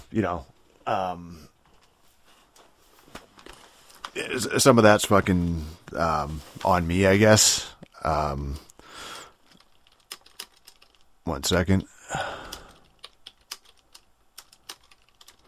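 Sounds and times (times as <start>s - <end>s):
speech: 0.1s - 1.5s, 4.2s - 9.1s, 11.2s - 12.5s
typing on a computer keyboard: 9.4s - 11.1s, 12.4s - 15.4s.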